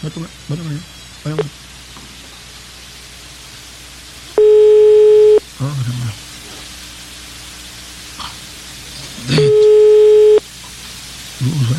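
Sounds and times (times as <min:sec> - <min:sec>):
people talking: 0:00.0 - 0:01.5, 0:05.6 - 0:06.2, 0:09.0 - 0:10.1, 0:11.4 - 0:11.7
telephone ringback tone while a call is being placed: 0:04.4 - 0:05.4, 0:09.3 - 0:10.4.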